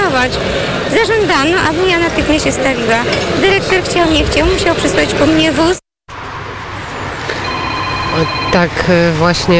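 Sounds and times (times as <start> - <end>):
speech: 0.1 - 5.8, 8.2 - 9.5
telephone ringing with high electronic tone: 7.4 - 8.9.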